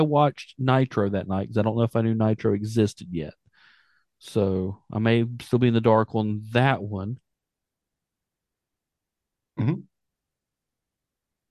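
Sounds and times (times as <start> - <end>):
speech: 0.0 - 3.4, 4.2 - 7.2, 9.6 - 9.9
person coughing: 9.6 - 9.8.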